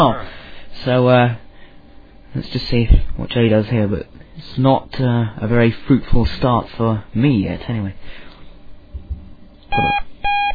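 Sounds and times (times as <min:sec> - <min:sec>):
speech: 0:00.0 - 0:01.4, 0:02.3 - 0:08.2, 0:09.7 - 0:10.1
faint low hum: 0:00.0 - 0:10.5
electronic game alert beeps for a new message: 0:09.7 - 0:10.5.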